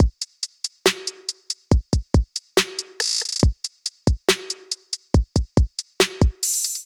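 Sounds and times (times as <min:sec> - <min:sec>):
trap drums: 0:00.0 - 0:06.8.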